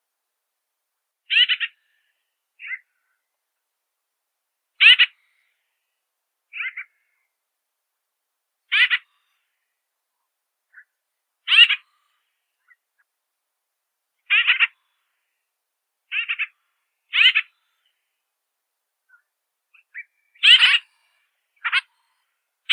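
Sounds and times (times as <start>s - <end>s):
grosbeak Mycerobas carnipes calling: 1.3s - 1.8s, 2.6s - 2.9s, 4.8s - 5.2s, 6.5s - 7.0s, 8.7s - 9.1s, 11.5s - 11.8s, 14.3s - 14.8s, 16.1s - 17.9s, 19.1s - 21.0s, 21.6s - 21.9s.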